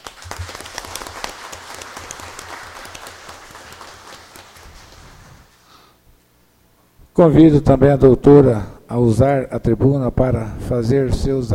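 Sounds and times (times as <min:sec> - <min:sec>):
audience applause: 0:00.0 - 0:05.5
speech: 0:07.2 - 0:11.5.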